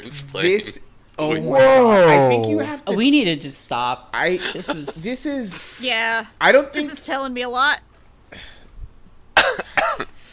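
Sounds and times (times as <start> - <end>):
speech: 0.0 - 8.5
faint noise: 0.0 - 10.3
person coughing: 9.4 - 10.1.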